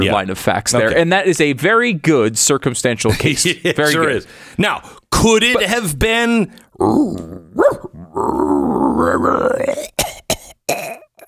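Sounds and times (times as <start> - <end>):
speech: 0.0 - 11.0
person imitating a raccoon dog growl: 6.8 - 10.0
person coughing: 9.8 - 11.2.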